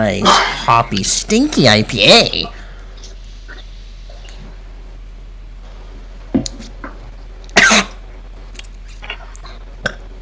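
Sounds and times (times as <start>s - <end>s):
speech: 0.0s - 2.6s
person coughing to dislodge a crouton stuck in the throat: 0.2s - 0.7s, 7.6s - 8.0s.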